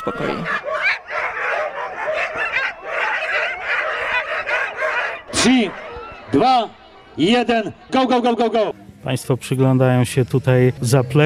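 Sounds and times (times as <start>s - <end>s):
speech: 0.0s - 0.7s, 5.4s - 11.2s
excited sled dogs barking and yipping at a sled dog race start in the Bieszczady mountains: 0.0s - 7.0s.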